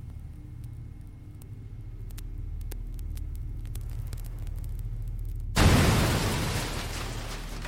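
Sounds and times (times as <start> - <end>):
low steady hum: 0.0 - 7.6
explosion blowing open a safe: 5.6 - 7.6.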